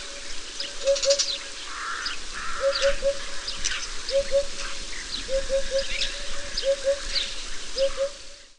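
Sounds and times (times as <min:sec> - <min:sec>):
hoopoe bird call: 0:00.7 - 0:01.4, 0:02.4 - 0:03.3, 0:04.1 - 0:08.3.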